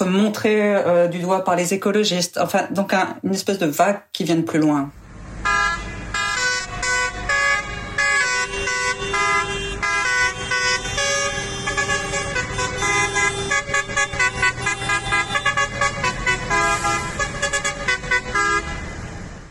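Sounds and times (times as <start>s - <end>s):
speech: 0.1s - 5.0s
horns on large tractors honking at a farmers' protest in a small German town: 5.4s - 19.0s.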